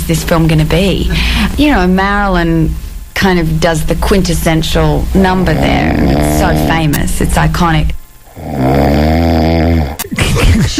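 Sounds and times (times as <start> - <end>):
speech: 0.1 - 9.3, 10.6 - 10.7
person snoring: 4.8 - 10.1.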